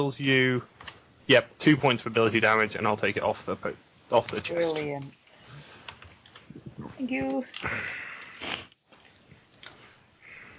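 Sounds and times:
speech: 0:00.0 - 0:05.2, 0:07.0 - 0:08.6
breathy sniffs into a microphone: 0:07.8 - 0:08.8.

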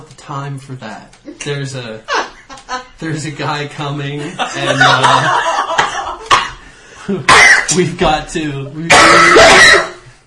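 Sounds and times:
speech: 0:00.3 - 0:05.5, 0:07.1 - 0:09.9
laughter: 0:02.1 - 0:03.0, 0:04.2 - 0:07.3
person coughing, choking on phlegm: 0:06.3 - 0:06.6, 0:07.3 - 0:07.8, 0:08.9 - 0:10.0
person clearing throat: 0:07.2 - 0:07.8, 0:08.9 - 0:10.1.

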